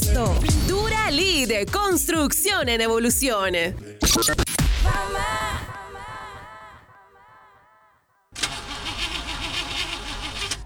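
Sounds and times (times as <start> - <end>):
speech: 0.2 - 5.6
car engine out of oil cranking then roaring roughly: 8.4 - 10.6.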